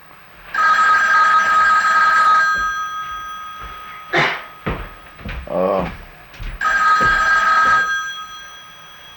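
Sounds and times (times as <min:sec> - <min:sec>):
telephone ringing with bright trilling tones: 0:00.5 - 0:04.6, 0:06.6 - 0:09.1.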